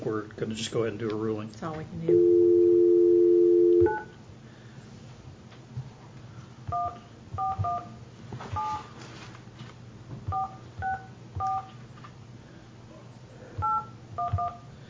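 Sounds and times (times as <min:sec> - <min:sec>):
low hum: 0:00.0 - 0:14.8
speech: 0:00.1 - 0:02.8, 0:03.8 - 0:04.1
telephone dial tone: 0:02.1 - 0:04.1.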